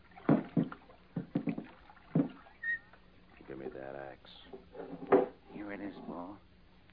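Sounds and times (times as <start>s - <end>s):
oars dipping and pulling through river water: 0.0s - 3.6s
wood knocking against a boat: 0.2s - 2.4s.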